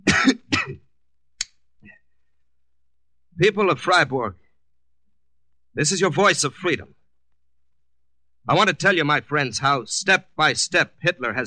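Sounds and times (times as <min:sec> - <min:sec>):
person coughing harshly: 0:00.0 - 0:00.8
speech: 0:03.4 - 0:04.4, 0:05.8 - 0:07.0, 0:08.4 - 0:11.4.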